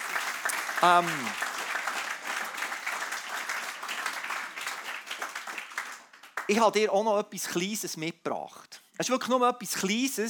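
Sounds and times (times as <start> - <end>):
audience applause: 0.0 - 6.6
speech: 0.8 - 1.5, 6.5 - 10.2.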